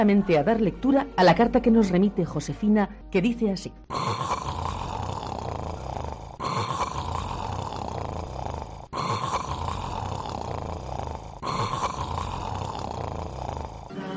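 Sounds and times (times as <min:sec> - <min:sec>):
speech: 0:00.0 - 0:04.3
voice imitating loud rasping snoring: 0:03.9 - 0:14.0.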